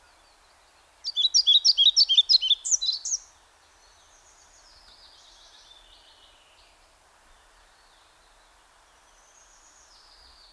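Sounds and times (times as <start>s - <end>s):
European pied flycatcher Ficedula hypoleuca song: 0.0s - 10.5s.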